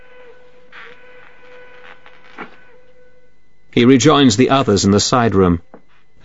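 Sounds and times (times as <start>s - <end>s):
faint train whistle: 0.0s - 3.8s
speech: 3.7s - 5.7s.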